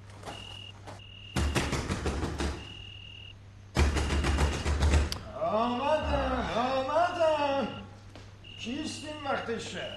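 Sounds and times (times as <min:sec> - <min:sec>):
faint steady hum: 0:00.0 - 0:09.9
heavy knocking from a door knocker at night: 0:01.3 - 0:02.7, 0:03.8 - 0:05.1
people talking: 0:05.4 - 0:07.9, 0:08.6 - 0:09.9.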